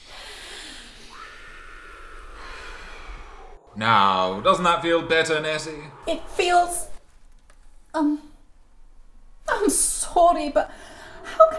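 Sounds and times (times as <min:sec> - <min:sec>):
deep snorting nasal breath in: 0:00.0 - 0:03.6
speech: 0:03.8 - 0:06.9, 0:07.9 - 0:08.3, 0:09.6 - 0:10.9.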